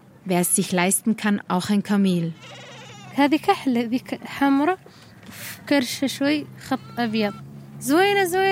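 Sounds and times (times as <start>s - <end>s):
steady low hum: 0.0s - 8.4s
speech: 0.2s - 2.6s, 3.2s - 8.4s
goats and sheep of a Sahrawi family bleating in a camp: 2.4s - 3.2s.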